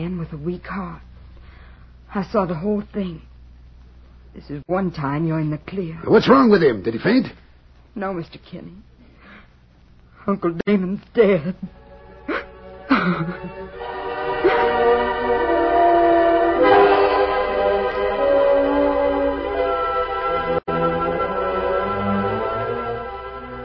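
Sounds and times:
speech: 0.0s - 1.1s, 2.1s - 3.3s, 4.4s - 7.4s, 8.0s - 8.9s, 10.2s - 11.8s, 13.0s - 13.8s
train horn blaring: 13.8s - 23.6s.

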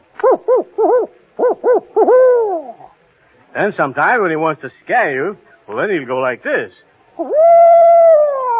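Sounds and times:
person imitating a contented owl hooting: 0.2s - 3.0s, 7.2s - 8.5s
speech: 0.3s - 7.8s.

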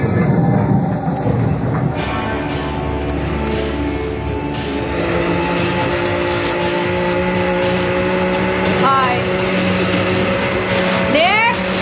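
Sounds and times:
droning tonal whines: 0.0s - 11.8s
steady heavy mechanical rumble: 0.0s - 11.8s.

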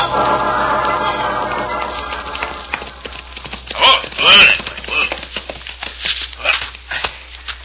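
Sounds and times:
horse hooves clip-clopping: 0.1s - 7.6s.

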